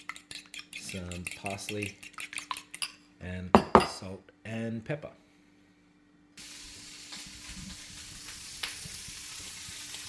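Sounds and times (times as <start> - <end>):
speech: 0.9 - 2.1, 3.2 - 5.2
bacon frying in a pan with crackling fat: 6.4 - 10.0.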